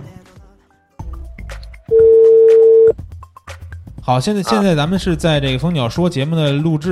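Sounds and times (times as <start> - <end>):
loud steady telephone tone: 1.9 - 2.9
telephone dialing short electronic beeps: 1.9 - 2.9
speech: 4.1 - 6.8.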